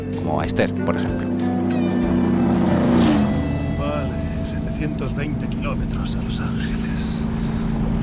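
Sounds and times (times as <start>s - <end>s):
Chevrolet Impala engine roaring while driving: 0.0s - 8.0s
speech: 0.1s - 1.5s, 4.8s - 7.5s.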